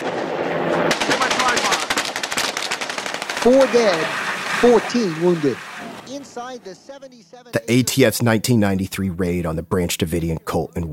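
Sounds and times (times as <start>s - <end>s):
automatic gunfire in archival news footage of the ATF raid in Waco: 0.9s - 4.6s
speech: 3.4s - 10.9s.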